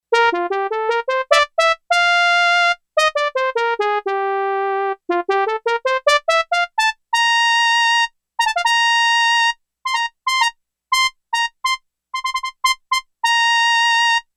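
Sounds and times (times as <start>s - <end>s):
synthesizer factory preset trumpet voice: 0.2s - 14.2s.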